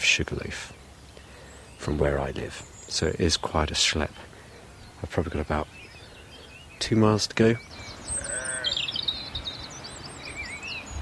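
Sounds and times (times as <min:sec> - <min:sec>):
soft outdoor hush: 0:00.0 - 0:11.0
thin high bird calls chirping and trilling: 0:00.0 - 0:11.0
speech: 0:00.2 - 0:00.8, 0:01.8 - 0:04.3, 0:05.0 - 0:05.8, 0:06.8 - 0:07.9
sheep bleating in a rushy meadow in a deep valley: 0:08.1 - 0:08.9.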